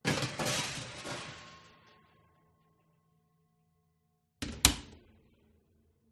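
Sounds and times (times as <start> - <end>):
baking tray put in oven: 0.0 - 1.8
oven door closing: 4.4 - 5.1.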